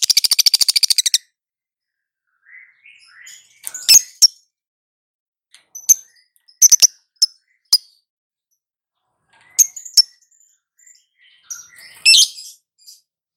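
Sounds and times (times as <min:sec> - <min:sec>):
female lovebird sharp high chatter: 0:00.0 - 0:01.2, 0:06.6 - 0:07.3
female lovebird soft chirps and loud shrill squeaks: 0:00.0 - 0:01.2, 0:03.0 - 0:04.4, 0:05.7 - 0:08.0, 0:09.4 - 0:13.0.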